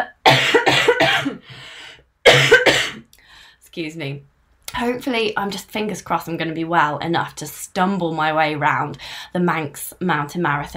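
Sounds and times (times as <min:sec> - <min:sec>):
person coughing with a cold: 0:00.0 - 0:01.5, 0:02.3 - 0:03.0
raspy breath: 0:01.4 - 0:02.1, 0:03.2 - 0:03.6, 0:09.0 - 0:09.4
speech: 0:03.8 - 0:10.7.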